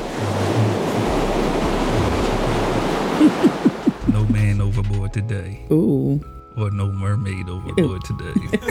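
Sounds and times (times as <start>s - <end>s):
broadband rushing water like surf: 0.0s - 4.5s
low rumble: 0.0s - 6.3s
laughter: 3.2s - 4.6s, 8.2s - 8.6s
speech: 5.2s - 8.6s.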